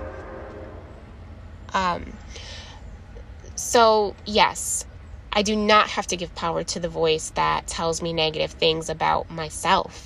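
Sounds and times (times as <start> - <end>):
train horn blast: 0.0 - 1.4
train rumbling past: 0.0 - 6.2
speech: 1.8 - 2.6, 3.6 - 10.0.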